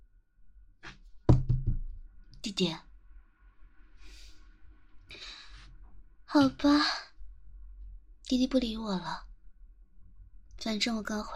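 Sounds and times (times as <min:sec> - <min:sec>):
firm knocks on a wooden door: 0:01.3 - 0:01.9
speech: 0:02.4 - 0:02.9, 0:06.3 - 0:07.0, 0:08.3 - 0:09.3, 0:10.6 - 0:11.3.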